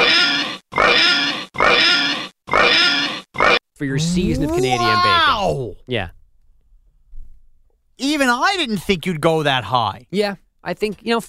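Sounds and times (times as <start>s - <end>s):
pig oinking: 0.0s - 5.3s
speech: 3.8s - 6.2s, 8.0s - 11.2s.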